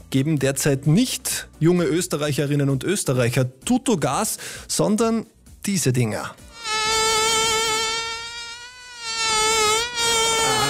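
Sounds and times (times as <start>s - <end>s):
speech: 0.1s - 6.5s
mosquito whining with high-pitched buzz: 6.5s - 10.6s.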